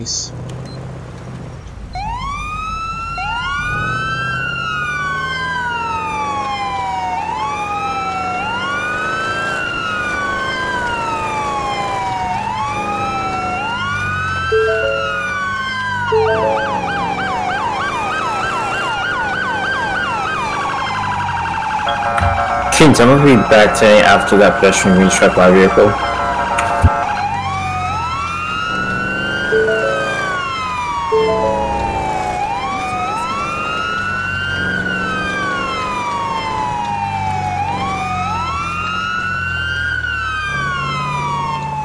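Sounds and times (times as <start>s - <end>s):
speech: 0.0s - 0.5s, 22.8s - 26.1s
road rumble: 0.0s - 41.8s
police car siren wailing during code 3 response to a traffic accident: 1.8s - 41.8s.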